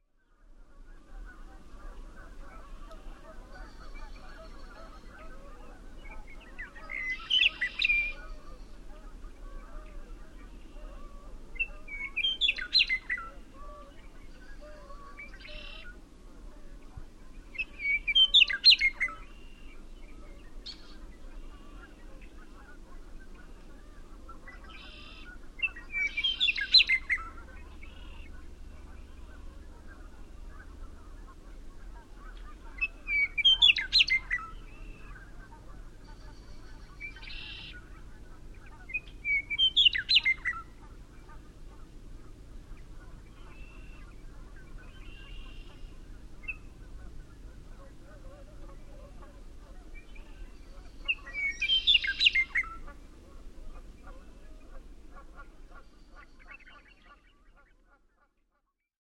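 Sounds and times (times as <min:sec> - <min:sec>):
Western Meadowlark singing: 0:05.9 - 0:10.8, 0:11.5 - 0:16.0, 0:17.3 - 0:22.6, 0:24.3 - 0:41.5, 0:42.9 - 0:53.0.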